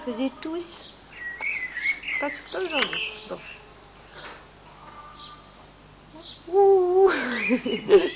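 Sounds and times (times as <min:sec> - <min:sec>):
speech: 0:00.0 - 0:01.0, 0:02.2 - 0:03.6, 0:06.2 - 0:08.1
voice imitating a little owl hooting: 0:06.2 - 0:07.5
laughter: 0:07.0 - 0:08.1.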